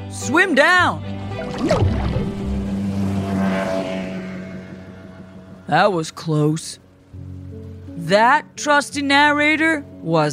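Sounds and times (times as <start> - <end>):
speech: 0.2 - 2.0, 5.7 - 6.8, 8.0 - 10.3
churning water: 1.1 - 10.3
boat propeller passing underwater: 1.3 - 3.2.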